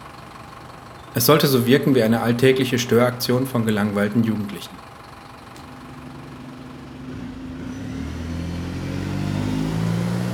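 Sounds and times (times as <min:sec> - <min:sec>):
speech: 0:01.2 - 0:04.9
shuttle bus engine accelerating through gate: 0:05.6 - 0:10.3.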